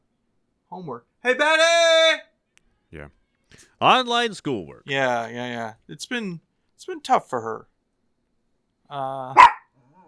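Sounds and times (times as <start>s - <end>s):
speech: 0.7s - 2.2s, 2.9s - 7.7s, 8.9s - 10.0s
dog barking: 9.4s - 9.7s.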